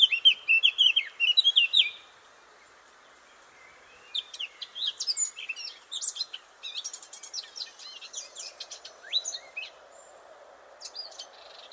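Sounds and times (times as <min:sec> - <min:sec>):
Eurasian blackcap Sylvia atricapilla singing: 0:00.0 - 0:02.1, 0:03.6 - 0:09.8
soft background hiss: 0:00.0 - 0:11.7.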